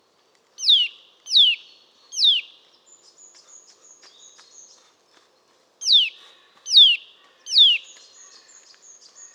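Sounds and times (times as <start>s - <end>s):
Eurasian nuthatch Sitta europaea giving descending whistled calls: 0.6s - 1.6s, 2.2s - 2.5s.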